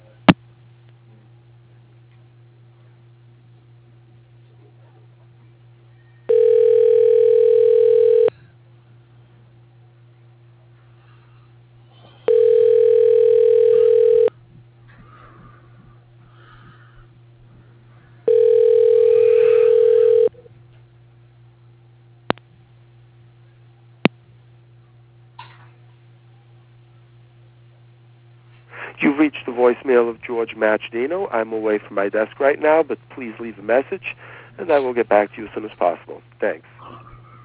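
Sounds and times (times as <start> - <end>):
low steady hum: 0.0 - 37.4
telephone ringback tone while an extension is tried: 6.3 - 8.3, 12.3 - 14.3, 18.3 - 20.4
speech: 30.5 - 36.8.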